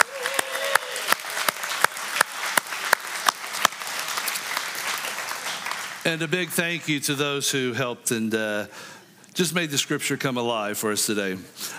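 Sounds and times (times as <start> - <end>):
audience applause: 0.0 - 6.8
speech: 6.1 - 11.7.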